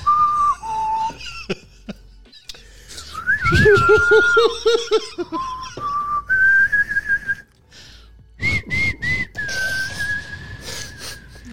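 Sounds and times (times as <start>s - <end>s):
coach's whistle blown in breathy bursts: 0.0s - 1.2s, 3.1s - 4.5s, 5.5s - 7.5s, 8.4s - 11.4s
laughter: 0.4s - 6.3s
speech: 3.5s - 5.6s.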